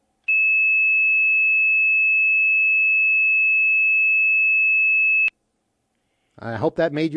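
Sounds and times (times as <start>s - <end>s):
2600 hertz tone over a phone line: 0.3s - 5.3s
speech: 6.4s - 7.1s.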